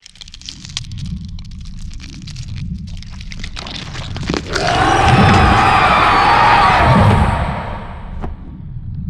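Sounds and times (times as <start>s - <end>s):
hatchling creature sound effect: 4.4s - 8.3s.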